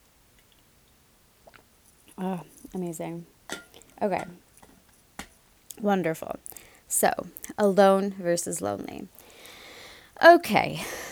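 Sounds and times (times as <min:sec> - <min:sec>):
person sipping water from a bottle: 0:01.4 - 0:01.7
soft gulp: 0:01.4 - 0:01.7
speech: 0:02.2 - 0:04.4, 0:05.8 - 0:09.2, 0:10.2 - 0:11.0.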